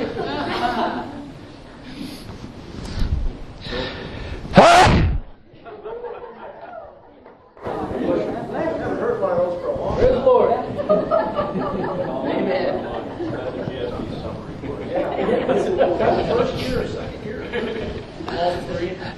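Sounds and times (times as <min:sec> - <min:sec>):
laughter: 0:00.0 - 0:01.5, 0:05.5 - 0:19.0
murmur of voices and chatter: 0:00.0 - 0:19.1
person sneezing: 0:04.5 - 0:05.2.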